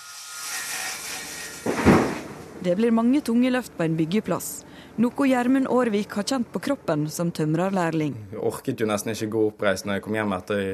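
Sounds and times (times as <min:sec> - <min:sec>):
saw cutting through large boards: 0:00.0 - 0:02.5
speech: 0:02.6 - 0:10.7.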